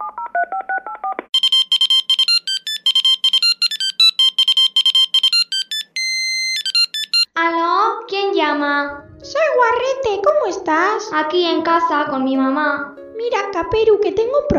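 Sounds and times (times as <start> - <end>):
mobile phone keypad tones as a number is dialed: 0.0 - 7.3
speech: 8.6 - 14.5.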